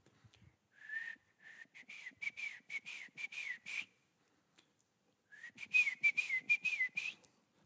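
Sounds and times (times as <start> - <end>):
grandfather whistling a signature call: 0.8 - 4.0, 5.3 - 7.3.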